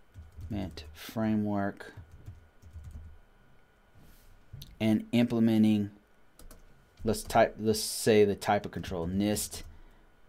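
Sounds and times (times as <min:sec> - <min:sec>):
typing on a computer keyboard: 0:00.1 - 0:00.9, 0:01.9 - 0:03.1, 0:06.4 - 0:07.4
speech: 0:00.5 - 0:02.1, 0:04.8 - 0:06.0, 0:07.0 - 0:09.7.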